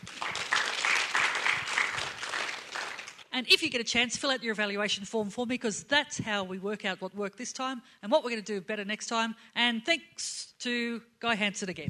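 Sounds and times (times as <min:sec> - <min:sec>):
audience clapping: 0:00.0 - 0:03.3
speech: 0:03.4 - 0:11.8.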